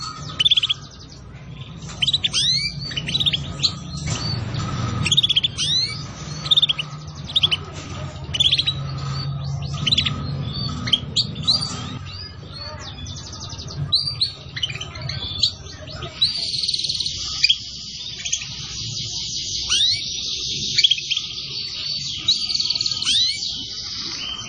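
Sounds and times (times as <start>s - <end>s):
low droning hum: 0.0s - 15.8s
canary singing used as a lure for catching birds: 0.0s - 24.4s.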